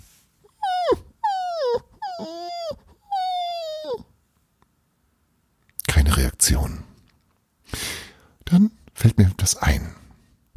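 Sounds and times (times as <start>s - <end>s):
dog left alone by an empty bed whimpering: 0.4s - 4.1s
speech: 6.5s - 6.8s, 9.2s - 10.0s.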